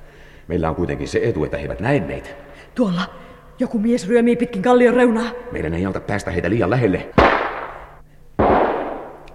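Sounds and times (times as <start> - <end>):
speech: 0.5 - 7.4
gunshots with long rumble: 7.2 - 9.3.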